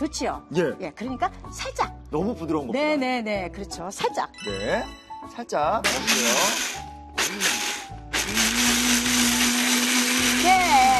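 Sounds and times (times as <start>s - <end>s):
speech: 0.0s - 7.7s
blender grinding soaked rice for porridge: 5.8s - 10.9s.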